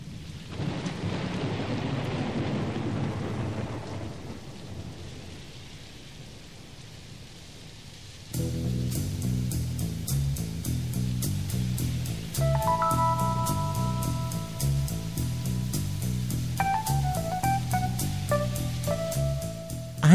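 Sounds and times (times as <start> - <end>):
deep thunder rumbling: 0.0 - 5.6, 11.8 - 20.0
heavy rain pouring: 0.0 - 20.1
sustained musical tone: 12.4 - 15.7, 16.6 - 19.9.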